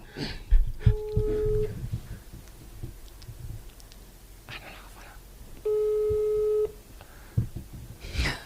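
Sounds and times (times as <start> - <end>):
telephone busy tone after call hung up: 0.9 - 1.7, 5.7 - 6.8
faint whispering voices: 4.5 - 5.2.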